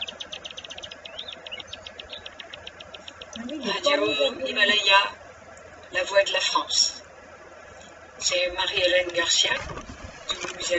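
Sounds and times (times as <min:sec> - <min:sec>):
nightingale singing: 0:00.0 - 0:04.4
speech: 0:03.4 - 0:05.2, 0:05.9 - 0:07.0, 0:08.2 - 0:09.9.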